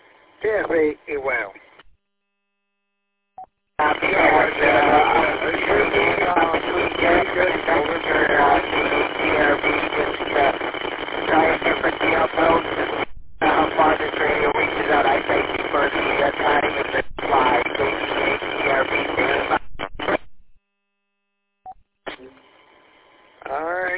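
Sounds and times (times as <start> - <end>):
steady radio hiss and static: 0.0 - 1.8, 3.8 - 20.3, 22.1 - 23.9
speech: 0.4 - 1.6
weak garbled radio transmission: 0.4 - 1.8, 3.8 - 20.3.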